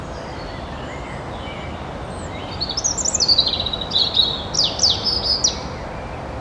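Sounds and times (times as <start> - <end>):
European robin Erithacus rubecula singing: 0.0 - 6.3.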